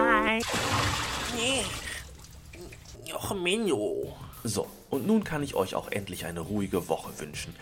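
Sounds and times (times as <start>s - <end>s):
water splashing out of a bucket beside a desk: 0.3s - 3.0s
speech: 3.3s - 7.6s.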